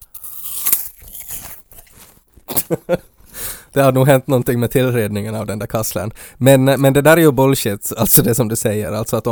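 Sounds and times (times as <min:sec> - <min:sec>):
crunchy bite into an apple: 0:00.0 - 0:02.2
sharp crunching chews of an apple: 0:00.0 - 0:02.5
speech: 0:02.7 - 0:03.1, 0:03.7 - 0:09.3.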